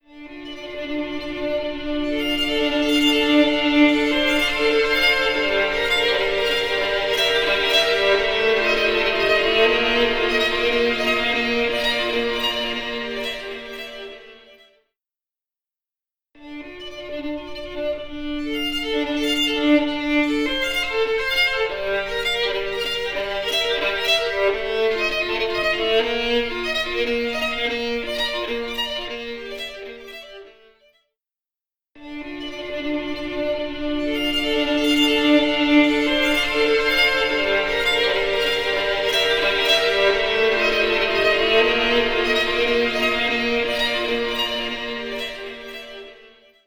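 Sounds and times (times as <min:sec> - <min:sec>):
violin playing in a marble atrium: 0:00.1 - 0:14.7, 0:16.5 - 0:30.7, 0:32.0 - 0:46.6.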